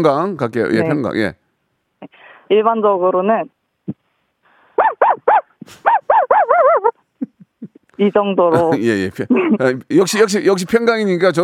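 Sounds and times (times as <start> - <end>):
speech: 0.0 - 1.4, 2.0 - 4.0, 8.0 - 11.4
person imitating an ordinary dog with yips and barks: 4.8 - 7.0
laughter: 5.7 - 9.8.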